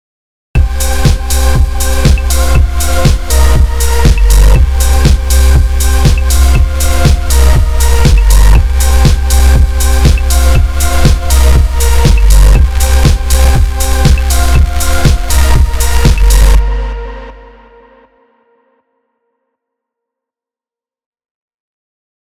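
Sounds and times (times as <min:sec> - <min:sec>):
intense bass: 0:00.6 - 0:18.2.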